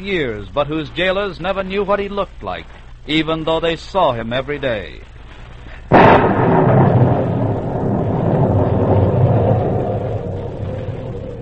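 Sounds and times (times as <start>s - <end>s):
speech: 0.0s - 5.1s
howling wind in a night storm off the southern coast of France: 5.9s - 11.4s
thunder crack and rumble in a night storm over Saint Marguerite island, France: 5.9s - 11.4s.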